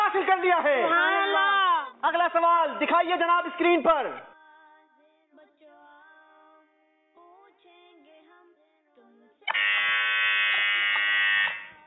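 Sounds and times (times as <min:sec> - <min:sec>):
speech: 0:00.1 - 0:01.4, 0:02.0 - 0:04.3
quiz show contestant electronic buzzer: 0:09.5 - 0:11.8.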